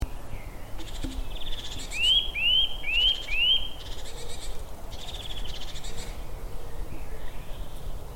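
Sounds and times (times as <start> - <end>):
background noise: 0.0 - 8.1
other bird sounds: 0.0 - 8.1
Eurasian nuthatch Sitta europaea calling clear upward-sliding whistled notes: 0.8 - 6.2.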